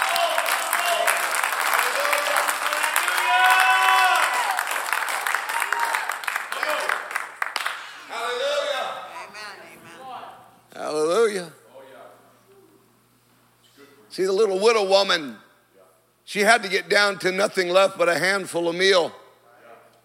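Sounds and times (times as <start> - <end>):
church congregation clapping hands during a sermon: 0.0 - 9.9
voices calling and singing: 8.0 - 10.5
speech: 14.2 - 15.4, 16.4 - 19.2.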